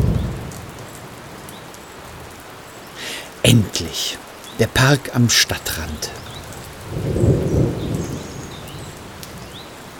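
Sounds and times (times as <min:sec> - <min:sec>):
low distant thunder rumbling: 0:00.0 - 0:00.7, 0:06.3 - 0:09.6
steady rain pattering in a park on the edge of town: 0:00.0 - 0:09.9
speech: 0:03.4 - 0:06.2.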